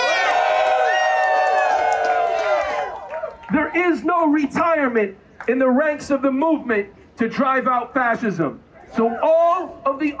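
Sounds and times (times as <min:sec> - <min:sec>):
large crowd cheering and whooping: 0:00.0 - 0:03.8
speech: 0:03.5 - 0:10.1.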